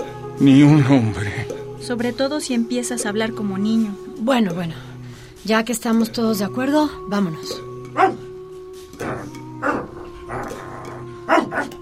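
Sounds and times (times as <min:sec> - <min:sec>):
speech: 0:00.4 - 0:08.2
dog barking: 0:08.0 - 0:08.2, 0:09.0 - 0:10.6, 0:11.3 - 0:11.7.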